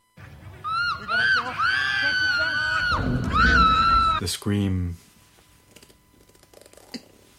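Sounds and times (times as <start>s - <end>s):
loud high-pitched human scream ending in a falling wail: 0.7s - 4.2s.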